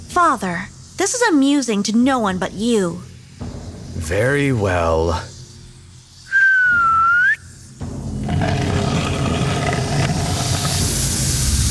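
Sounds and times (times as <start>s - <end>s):
speech: 0.2s - 3.1s, 4.0s - 5.3s
soft human whistled note rising slightly: 6.3s - 7.5s
sustained low grinding rumbling noise: 8.2s - 11.6s.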